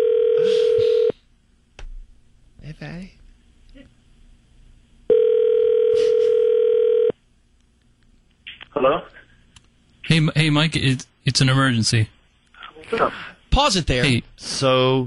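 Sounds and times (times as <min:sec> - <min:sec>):
buzzing ringback tone of an outgoing phone call: 0:00.0 - 0:01.1, 0:05.1 - 0:07.2
speech: 0:10.5 - 0:12.2, 0:13.0 - 0:15.0.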